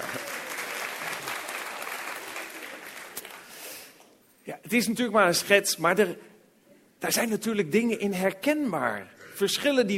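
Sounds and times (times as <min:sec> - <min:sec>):
audience applauding: 0:00.0 - 0:03.6
speech: 0:04.5 - 0:06.3, 0:07.0 - 0:09.9.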